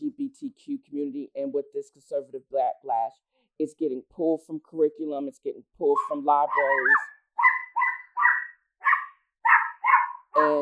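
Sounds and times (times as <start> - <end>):
speech: 0.4 - 7.2, 8.9 - 10.6
small dog barking: 6.0 - 10.4.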